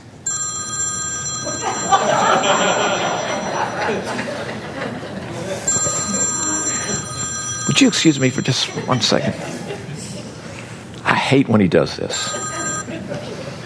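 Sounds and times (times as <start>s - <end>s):
telephone ringing with a high electronic trill: 0.2s - 5.0s, 5.6s - 9.5s, 12.1s - 12.9s
laughter: 1.4s - 7.2s, 8.0s - 10.6s, 12.3s - 13.6s
busy crowd noise: 1.7s - 13.6s
speech: 7.8s - 9.6s, 11.3s - 12.4s.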